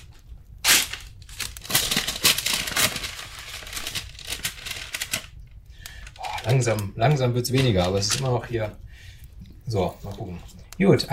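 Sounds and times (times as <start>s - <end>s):
paper envelope crinkling as it is handled: 0.0s - 8.7s
speech: 6.4s - 8.8s, 9.7s - 11.1s.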